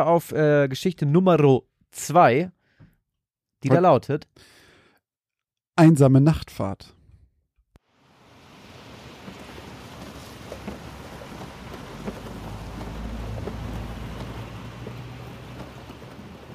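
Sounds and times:
speech: 0.0 - 2.6, 3.6 - 4.6, 5.8 - 7.0
heavy rain pouring down: 7.9 - 16.5
deep rumble of thunder: 8.0 - 16.5.

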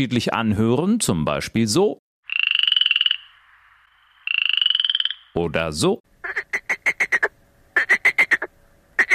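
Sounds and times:
speech: 0.0 - 2.0, 5.4 - 6.7
male frogs croaking at a pond: 2.2 - 5.4, 6.2 - 9.1.

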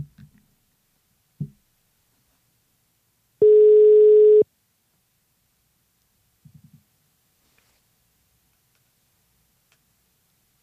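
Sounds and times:
telephone line beep while placing a phone call: 3.4 - 4.4.

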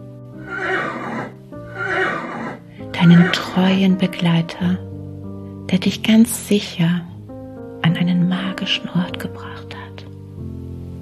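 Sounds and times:
horse whinnying: 0.4 - 3.6
speech: 3.0 - 4.9, 5.7 - 7.1, 8.7 - 9.5.

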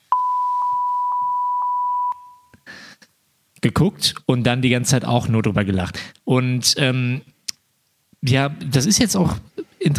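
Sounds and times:
high-pitched electronic censor bleep tone: 0.1 - 2.5
speech: 3.6 - 7.3, 8.2 - 9.9.

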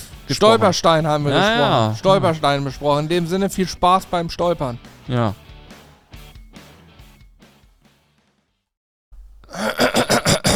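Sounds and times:
speech: 0.3 - 5.4
person clearing throat: 1.4 - 2.0, 9.5 - 10.5.

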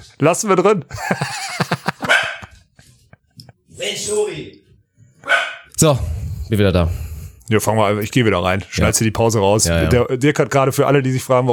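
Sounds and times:
speech: 0.0 - 1.4, 4.0 - 4.6, 5.8 - 11.5
laughter: 0.9 - 4.0
dog barking and yelping excitedly: 1.9 - 2.6, 5.2 - 5.7.

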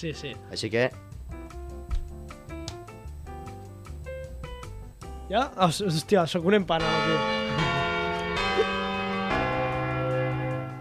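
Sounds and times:
speech: 0.0 - 1.1, 5.3 - 7.4
bell strokes ringing: 6.8 - 10.7.

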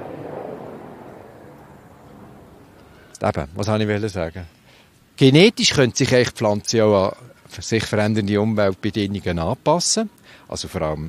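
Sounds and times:
helicopter flying overhead: 0.0 - 3.2
speech: 3.2 - 4.6, 5.2 - 11.0.

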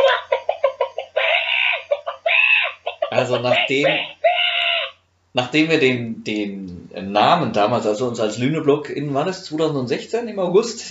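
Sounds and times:
chickens clucking: 0.0 - 5.0
speech: 3.1 - 4.2, 5.3 - 10.8.

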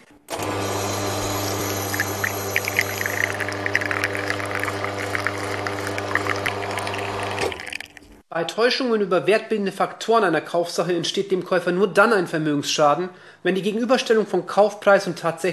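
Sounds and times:
espresso machine pump humming and buzzing: 0.4 - 8.2
thin trickle of espresso crema streaming into a coffee cup: 1.5 - 8.2
speech: 8.4 - 15.5.

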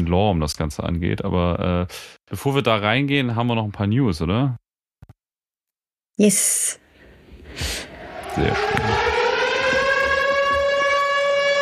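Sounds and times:
speech: 0.0 - 4.6, 6.2 - 6.8, 7.5 - 9.2
civil defense siren wailing: 7.5 - 11.5.

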